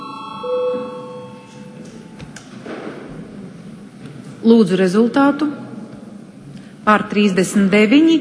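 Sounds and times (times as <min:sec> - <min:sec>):
parliament voting electronic bell tone in a large room: 0:00.0 - 0:02.2
murmur: 0:00.7 - 0:06.8
speech: 0:04.4 - 0:05.6, 0:06.9 - 0:08.2.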